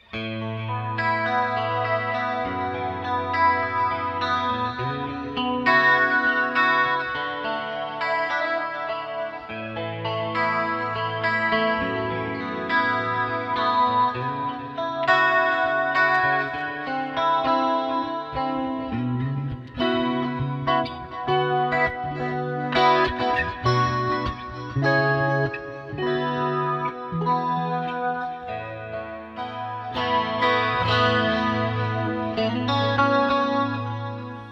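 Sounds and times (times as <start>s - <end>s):
electric guitar with chorus and delay in stereo: 0.0s - 34.5s.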